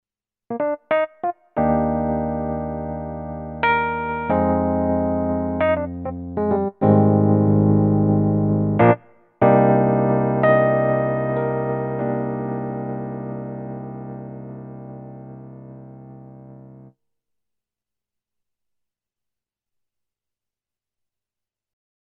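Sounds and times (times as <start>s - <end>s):
Roland HP702 suitcase electric piano: 0.5s - 16.9s.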